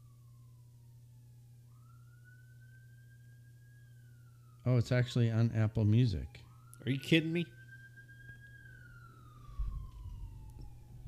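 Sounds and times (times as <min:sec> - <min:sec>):
ambulance siren wailing as it passes: 0:00.0 - 0:00.8, 0:01.6 - 0:11.0
speech: 0:04.6 - 0:07.6.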